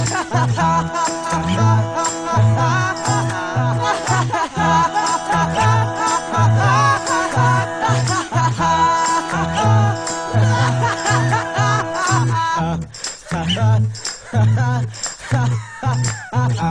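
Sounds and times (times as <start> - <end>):
person laughing at a text message: 0.0 - 12.6, 14.2 - 16.6.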